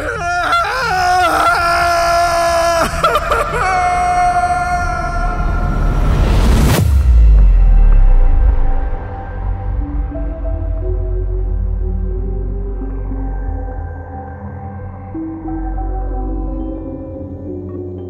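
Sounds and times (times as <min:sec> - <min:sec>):
person screaming in horror: 0:00.0 - 0:06.1
deep rumbling low tone: 0:05.3 - 0:16.7.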